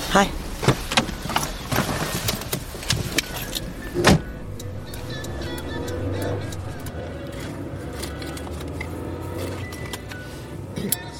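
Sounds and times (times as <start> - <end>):
speech: 0.1 - 0.8, 4.0 - 4.2
low engine rumble inside a moving car: 0.4 - 8.8
road hum: 0.5 - 9.6
mechanical whir: 1.3 - 7.6.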